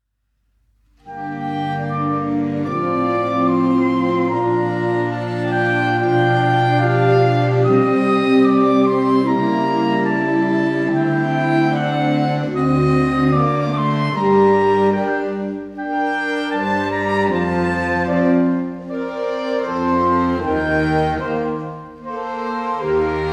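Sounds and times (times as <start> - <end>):
saxophone ensemble orchestra playing: 1.0 - 23.3.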